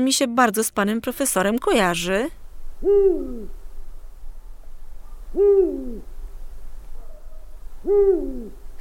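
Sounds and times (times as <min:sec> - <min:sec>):
speech: 0:00.0 - 0:03.6, 0:05.3 - 0:06.1, 0:07.8 - 0:08.6
faint low hum: 0:00.0 - 0:08.8
owl hooting: 0:02.7 - 0:06.2, 0:06.8 - 0:08.8.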